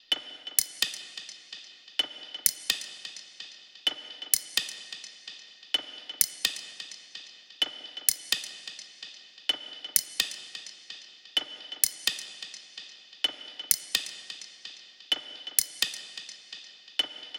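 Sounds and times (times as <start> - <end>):
percussion loop at 128 bpm: 0.1 - 17.2.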